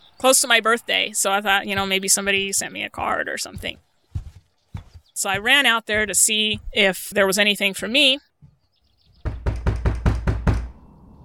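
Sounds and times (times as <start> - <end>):
speech: 0.2 - 3.9, 5.2 - 8.3
loud knocks on a door: 9.2 - 10.7.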